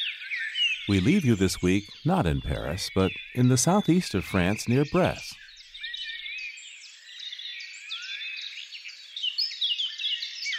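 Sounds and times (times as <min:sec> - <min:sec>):
chorus of birds singing at dawn in hedgerows: 0:00.0 - 0:10.5
speech: 0:00.9 - 0:05.4.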